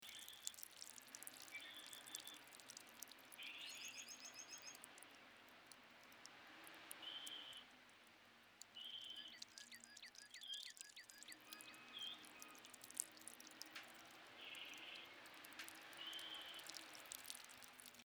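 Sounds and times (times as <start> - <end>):
dripping: 0.0 - 18.0.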